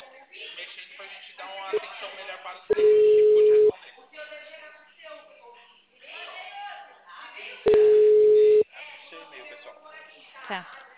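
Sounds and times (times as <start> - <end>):
band-limited talk: 0.0 - 10.9
telephone line tone while placing a call: 2.7 - 3.7, 7.7 - 8.6.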